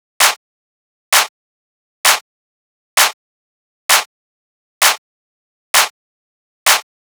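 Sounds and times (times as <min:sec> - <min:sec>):
techno clap loop: 0:00.2 - 0:00.4, 0:01.1 - 0:01.3, 0:02.0 - 0:02.2, 0:06.7 - 0:06.9.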